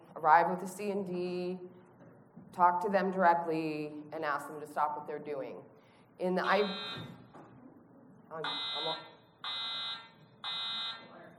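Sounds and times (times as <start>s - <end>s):
speech: 0.2s - 1.8s, 2.5s - 7.2s, 8.3s - 9.6s
fire alarm beeps: 6.4s - 7.2s, 8.4s - 11.2s.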